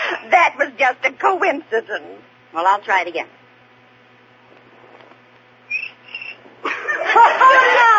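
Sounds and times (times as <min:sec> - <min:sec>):
speech: 0:00.2 - 0:03.4, 0:07.1 - 0:07.9
cricket chirping: 0:05.7 - 0:06.4
burst of laughter: 0:06.6 - 0:07.9.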